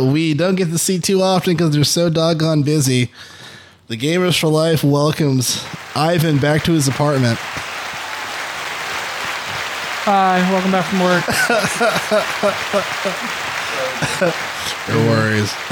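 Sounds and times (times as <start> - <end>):
speech: 0.0 - 7.6, 10.1 - 13.4, 14.0 - 15.7
steady hand clapping: 5.5 - 15.7
laughter: 10.1 - 15.7.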